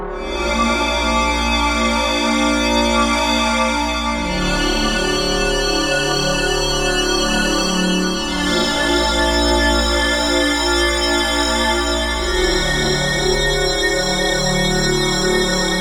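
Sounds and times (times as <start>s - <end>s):
Frosted Pad synth pad on KORG Node: 0.1s - 15.7s.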